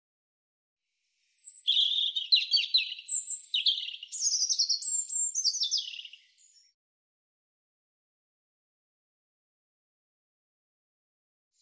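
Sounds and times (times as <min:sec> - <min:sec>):
European robin song: 0:01.2 - 0:06.8.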